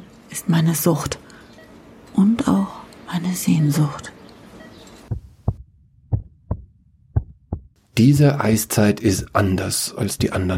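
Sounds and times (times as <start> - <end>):
speech: 0.4 - 1.2, 2.2 - 4.2, 8.0 - 10.5
slow steady heartbeat thumping: 5.1 - 7.8.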